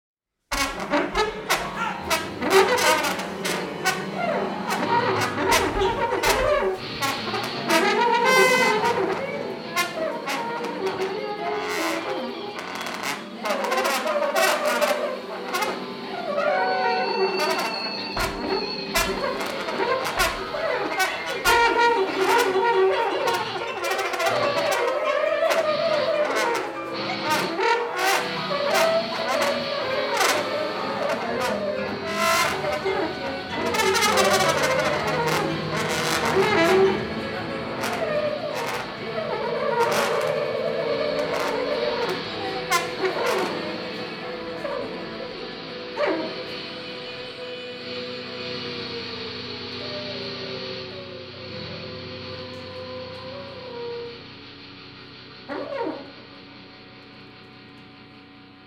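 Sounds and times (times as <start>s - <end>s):
short orchestral tutti: 0.5s - 57.3s.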